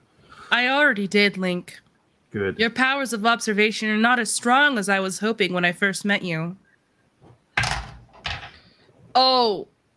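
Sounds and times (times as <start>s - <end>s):
speech: 0.5s - 6.6s, 9.2s - 9.7s
door thrown open with a loud bang: 7.6s - 8.6s.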